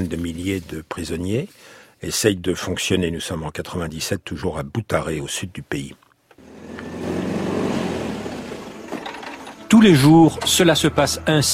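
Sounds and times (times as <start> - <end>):
speech: 0.0 - 6.0, 9.7 - 11.5
truck engine rumbling on arrival to unload prisoners in Butare: 6.4 - 10.9.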